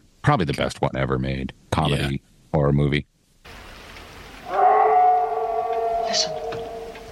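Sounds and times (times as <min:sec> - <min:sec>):
speech: 0:00.2 - 0:03.6, 0:06.1 - 0:06.4
eerie mournful howl on the moors: 0:04.4 - 0:07.1.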